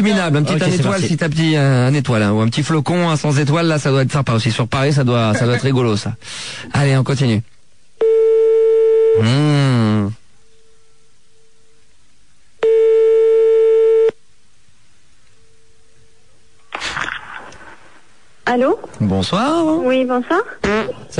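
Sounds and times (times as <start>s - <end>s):
speech: 0.0s - 7.5s, 9.2s - 10.2s, 18.5s - 21.1s
telephone line tone on a call to a hotel: 8.0s - 9.2s, 12.6s - 14.2s.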